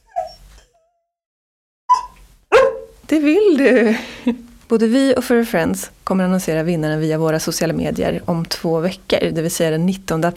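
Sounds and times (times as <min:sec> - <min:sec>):
dog whimpering yips: 0:00.0 - 0:01.0, 0:01.9 - 0:03.0
speech: 0:03.1 - 0:10.3.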